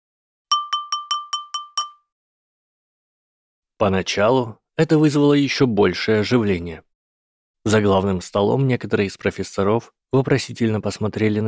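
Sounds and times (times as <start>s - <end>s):
spoon tapping on a glass of water: 0.5s - 2.1s
speech: 3.8s - 6.9s, 7.6s - 11.4s.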